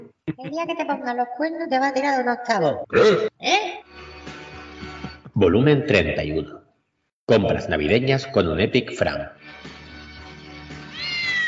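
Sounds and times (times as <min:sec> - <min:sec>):
speech: 0:00.4 - 0:03.9, 0:05.4 - 0:06.6, 0:07.3 - 0:09.6
cat meowing: 0:10.9 - 0:11.4.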